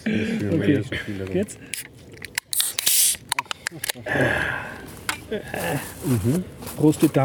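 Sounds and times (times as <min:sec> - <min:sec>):
speech: 0:00.0 - 0:02.0, 0:03.7 - 0:07.2
buttermilk bottle cap being unscrewed: 0:01.7 - 0:04.0.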